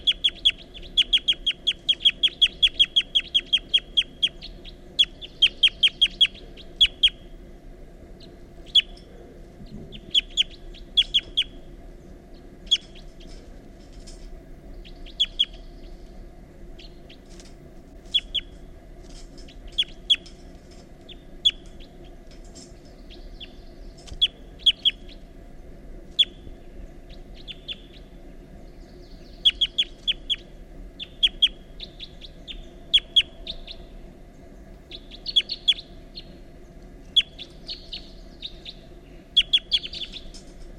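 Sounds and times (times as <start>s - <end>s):
wild bird giving rapid flight calls: 0.0s - 7.5s, 8.1s - 25.4s, 26.0s - 40.7s
low rumble: 0.0s - 40.7s.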